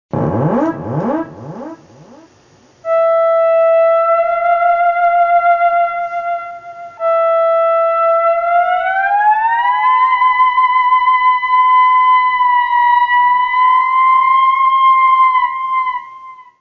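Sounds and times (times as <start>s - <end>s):
theremin: 0.1s - 16.5s.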